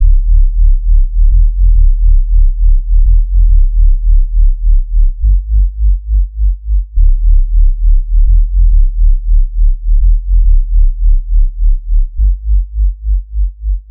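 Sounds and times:
bass loop in D minor: 0.0 - 13.8.

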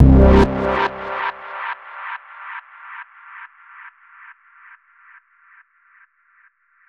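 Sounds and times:
bass loop: 0.0 - 1.4.

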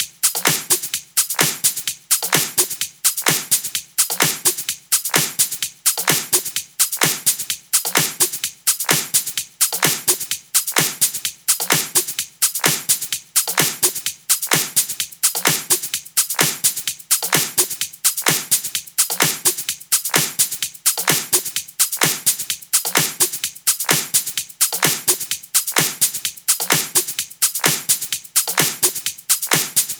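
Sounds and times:
nu trance drums: 0.0 - 29.9.

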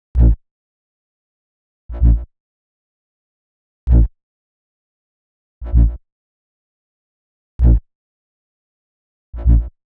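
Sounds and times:
G bass at 129 BPM: 0.1 - 0.4, 1.9 - 2.3, 3.9 - 4.1, 5.6 - 6.0, 7.6 - 7.8, 9.3 - 9.7.

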